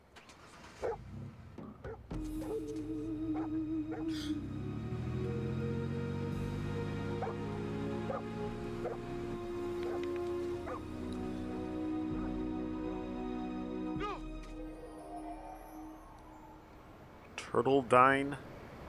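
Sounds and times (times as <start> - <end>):
dog barking: 0.8 - 1.0, 3.4 - 4.2, 7.2 - 7.4, 8.1 - 9.0, 9.8 - 10.9
steady droning background: 2.1 - 18.1
speech: 17.5 - 18.5.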